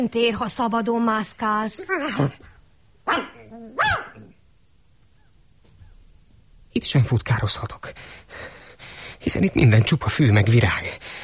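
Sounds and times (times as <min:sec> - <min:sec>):
speech: 0:00.0 - 0:02.5, 0:03.1 - 0:04.2, 0:06.8 - 0:08.6, 0:09.2 - 0:11.2
dog barking while pulling on its leash: 0:03.0 - 0:04.3.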